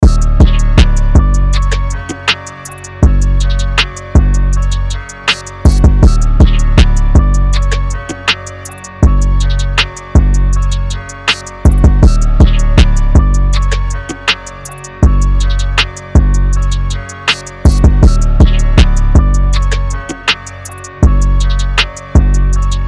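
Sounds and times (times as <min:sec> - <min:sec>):
160 BPM electronic music loop in F minor: 0:00.0 - 0:22.8.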